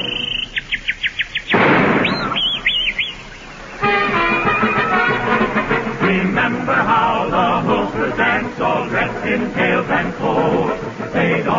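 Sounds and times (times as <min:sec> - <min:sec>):
sustained tonal sounds: 0:00.0 - 0:00.9, 0:02.5 - 0:11.5
man whistling imitating a bird: 0:00.0 - 0:05.3
loud rushing burst: 0:01.5 - 0:09.4.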